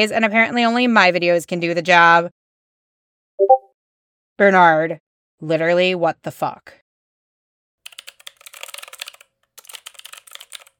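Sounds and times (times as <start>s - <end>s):
speech: 0.0s - 2.4s, 4.4s - 6.8s
rapid typing on a computer keyboard: 7.8s - 10.7s.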